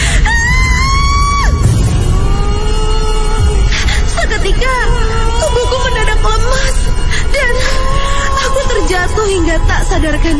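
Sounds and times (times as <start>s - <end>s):
dense noisy background: 0.0s - 10.3s
loud terrified scream: 0.2s - 2.5s.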